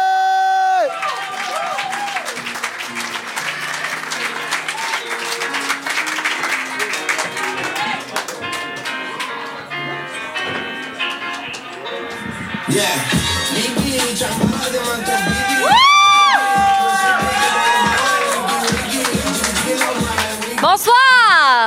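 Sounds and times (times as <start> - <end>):
cheers and whoops: 0.0 - 2.5, 4.5 - 5.2, 15.0 - 19.0
crowd applauding: 0.0 - 9.8, 13.9 - 21.6
speech: 12.8 - 13.2.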